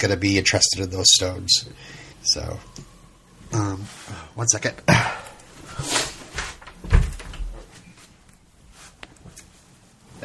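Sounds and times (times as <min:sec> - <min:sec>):
speech: 0:00.0 - 0:02.9, 0:03.5 - 0:05.2, 0:05.8 - 0:06.0
door pushed shut with a solid thud: 0:06.3 - 0:07.7.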